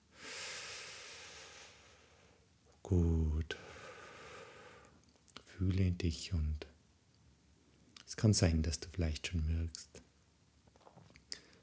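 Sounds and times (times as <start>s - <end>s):
slow deep breath: 0.1s - 2.4s, 3.6s - 5.0s
speech: 2.8s - 3.6s, 5.6s - 6.7s, 8.2s - 10.0s.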